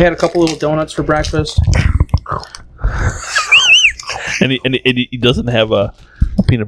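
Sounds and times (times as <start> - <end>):
speech: 0.0 - 3.5, 4.4 - 6.6
snack wrapper being torn open: 0.2 - 2.6
crunchy chewing and biting of a granola bar: 0.2 - 2.7
laughter: 1.6 - 4.9.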